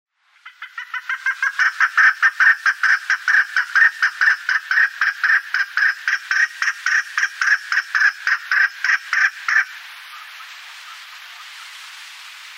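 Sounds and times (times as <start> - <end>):
chukar giving harsh chuck notes: 0.4 - 9.8.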